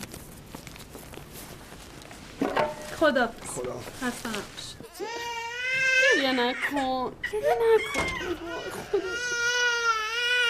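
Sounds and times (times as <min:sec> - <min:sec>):
speech: 0:03.0 - 0:05.2, 0:06.2 - 0:09.6
baby crying: 0:04.9 - 0:10.4.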